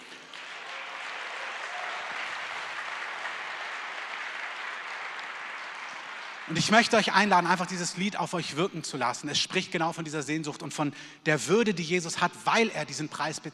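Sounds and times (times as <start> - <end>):
audience applause: 0.0 - 7.5
speech: 6.5 - 13.5.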